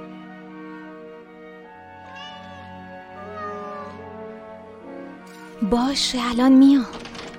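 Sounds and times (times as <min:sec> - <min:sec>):
cat meowing in long yowls: 0:02.0 - 0:04.1
speech: 0:05.6 - 0:07.1.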